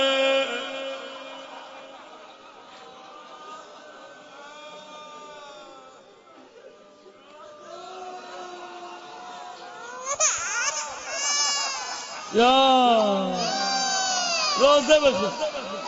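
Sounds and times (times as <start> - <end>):
laughter: 0.0 - 15.8
baby crying: 9.8 - 15.8
speech: 12.3 - 13.4, 14.6 - 15.8.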